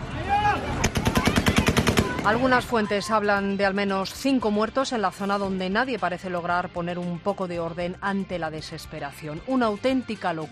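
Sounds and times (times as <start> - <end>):
people shouting at an airport: 0.1 - 3.3
rapid bursts of gunfire at an airport: 0.8 - 2.3
speech: 2.3 - 10.5.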